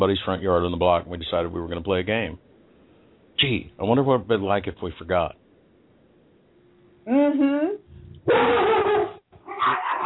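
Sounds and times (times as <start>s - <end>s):
speech: 0.0s - 2.5s, 3.4s - 5.4s, 7.1s - 8.7s
three dogs barking and yapping: 8.2s - 10.0s.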